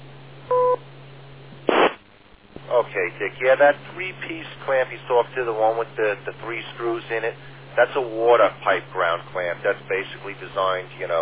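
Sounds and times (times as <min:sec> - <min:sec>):
constant low hum: 0:00.0 - 0:11.2
two-tone electronic beep from an amateur radio repeater: 0:00.5 - 0:00.8
harsh burst of radio noise: 0:01.6 - 0:02.0
speech: 0:02.8 - 0:11.2.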